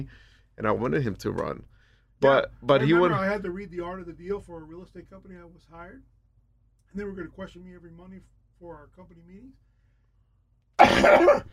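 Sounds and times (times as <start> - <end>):
speech: 0.0 - 6.1, 6.9 - 9.6, 10.9 - 11.5
person coughing: 10.8 - 11.5
throat clearing: 10.8 - 11.5.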